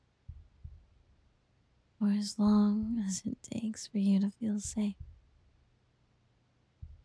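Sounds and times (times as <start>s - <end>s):
soft low human heartbeat thumps: 0.2s - 1.1s, 2.3s - 3.4s, 4.4s - 5.3s, 6.8s - 7.0s
person speaking softly: 2.0s - 5.0s
speech: 2.0s - 5.1s.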